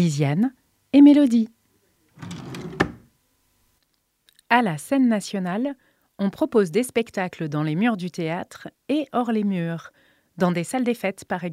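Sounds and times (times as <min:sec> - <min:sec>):
speech: 0:00.0 - 0:01.6, 0:04.5 - 0:11.5
drawer sliding open: 0:02.2 - 0:03.1.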